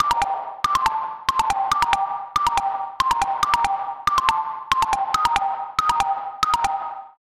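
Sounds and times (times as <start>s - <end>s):
plucked trap melody: 0.0s - 7.2s.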